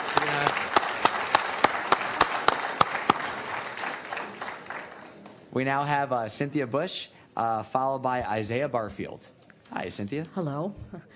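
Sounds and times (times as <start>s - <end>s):
audience applauding in a meeting chamber: 0.0s - 5.2s
speech: 5.6s - 11.1s.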